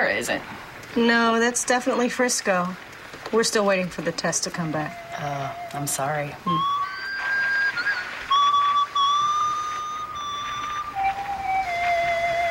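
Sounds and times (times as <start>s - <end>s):
faint hiss: 0.0s - 12.4s
speech: 0.2s - 6.8s
man whistling a slow tune: 4.8s - 12.4s.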